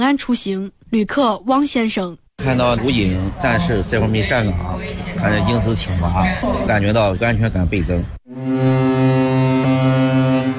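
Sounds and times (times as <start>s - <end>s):
speech: 0.0s - 8.7s
large 30,000-ton ro-ro passenger ferry sounding its horn on departure: 8.3s - 10.5s.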